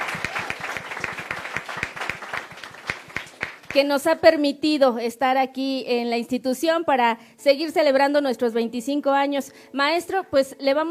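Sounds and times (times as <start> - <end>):
audience clapping for a director at a high school anniversary event: 0.0 - 4.0
speech: 3.7 - 10.9.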